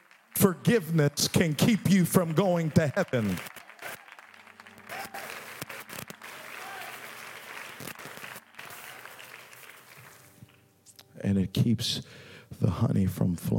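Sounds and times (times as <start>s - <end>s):
speech: 0.4s - 3.5s, 11.3s - 13.5s
scattered hand claps from an audience: 1.4s - 10.6s.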